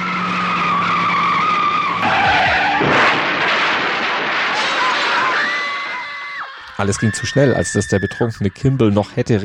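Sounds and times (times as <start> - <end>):
car engine roar: 0.0 - 4.8
speeding car tire screech: 0.0 - 9.0
car crash: 0.2 - 7.4
speech: 6.8 - 9.4.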